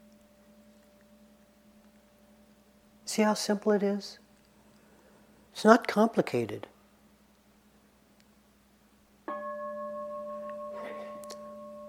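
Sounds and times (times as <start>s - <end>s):
speech: 3.2s - 4.2s, 5.6s - 6.7s
meditation bell ringing: 9.3s - 11.8s.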